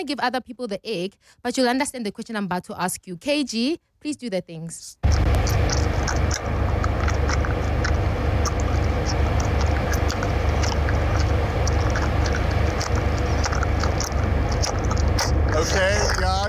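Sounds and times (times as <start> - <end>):
speech: 0.0 - 5.5, 15.6 - 16.4
dense continuous noisy background: 5.0 - 16.4
person chewing food with wet smacking and crunchy clicks: 5.0 - 16.4.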